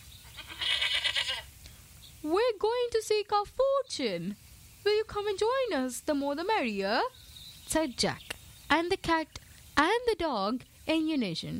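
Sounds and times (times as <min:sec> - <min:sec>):
billy goat bleating: 0:00.2 - 0:01.5
speech: 0:02.2 - 0:11.5.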